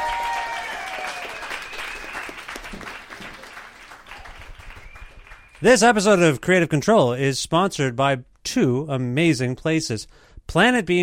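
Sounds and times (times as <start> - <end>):
audience applause: 0.0 - 6.0
speech: 5.6 - 11.0.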